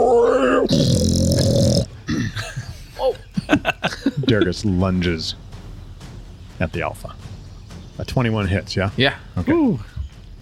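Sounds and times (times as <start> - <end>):
human voice imitating an enraged hoofed beast roaring: 0.0 - 1.9
snarling grunts: 0.0 - 2.4
laughter: 2.1 - 4.9
speech: 4.3 - 5.4, 6.6 - 7.3, 8.0 - 9.9.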